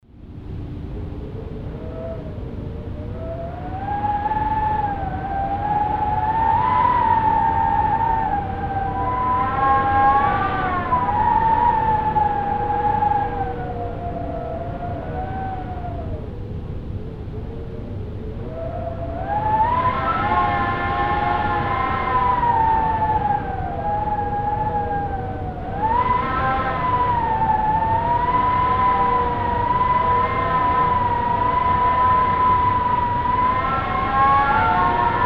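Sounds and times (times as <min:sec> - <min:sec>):
wind against a door: 0:00.2 - 0:35.2.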